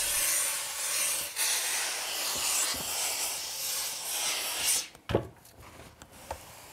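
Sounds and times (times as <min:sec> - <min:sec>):
steam hissing on a felt hat: 0:00.0 - 0:04.9.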